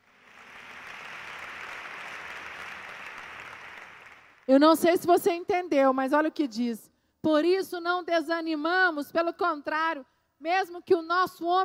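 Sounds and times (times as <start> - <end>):
large crowd applauding: 0.0 - 4.5
speech: 4.5 - 11.6.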